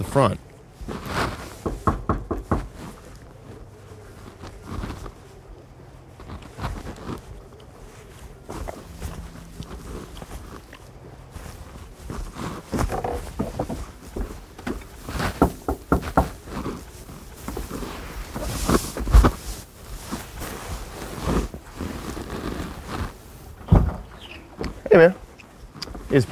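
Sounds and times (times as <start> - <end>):
speech: 0.0 - 1.0, 26.2 - 26.3
firm knocks on the basement door of a home: 1.6 - 2.8, 15.3 - 16.4
low steady rumble: 1.6 - 24.6.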